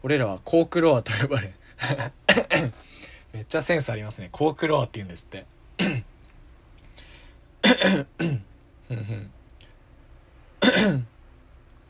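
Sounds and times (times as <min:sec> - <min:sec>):
speech: 0:00.0 - 0:06.1, 0:07.7 - 0:09.4, 0:10.6 - 0:11.1
person coughing: 0:01.8 - 0:02.9, 0:05.8 - 0:06.1, 0:07.6 - 0:09.3, 0:10.6 - 0:11.1
person clearing throat: 0:01.9 - 0:02.8, 0:05.8 - 0:06.1, 0:07.6 - 0:09.4, 0:10.6 - 0:11.1.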